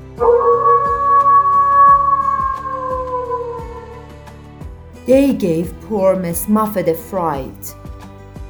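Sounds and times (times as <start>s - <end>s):
wolf howling: 0.2s - 4.0s
speech: 5.1s - 7.8s.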